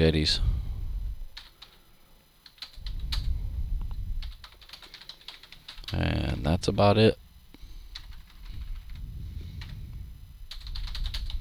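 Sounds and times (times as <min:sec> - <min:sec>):
speech: 0:00.0 - 0:00.5, 0:05.9 - 0:07.2
low rumble: 0:00.0 - 0:01.7, 0:02.5 - 0:11.3
computer keyboard typing: 0:01.4 - 0:01.8, 0:02.4 - 0:03.3, 0:04.2 - 0:06.1, 0:07.9 - 0:09.0, 0:10.5 - 0:11.3.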